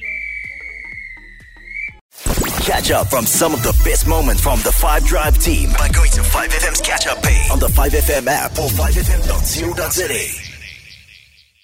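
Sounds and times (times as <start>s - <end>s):
referee's whistle blast: 0.0s - 2.0s
speech: 2.6s - 10.4s.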